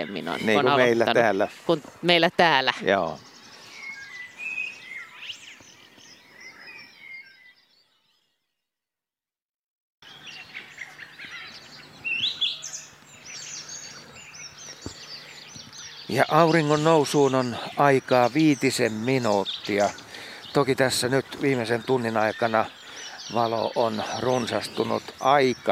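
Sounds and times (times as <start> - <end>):
speech: 0.0 - 3.3, 16.1 - 25.6
common sandpiper calling while circling over a lake before sunrise: 0.0 - 5.6, 10.4 - 25.6
soft birdsong: 0.0 - 8.7, 10.0 - 25.6.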